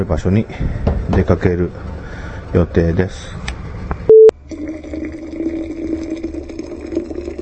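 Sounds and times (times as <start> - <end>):
speech: 0.0 - 3.5
short electronic beep: 4.1 - 4.3
hot water being poured into a thermos pot: 4.4 - 7.4.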